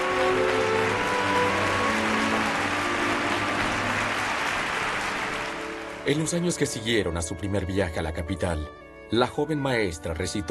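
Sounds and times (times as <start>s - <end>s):
large crowd applauding: 0.0s - 6.7s
speech: 6.1s - 10.4s.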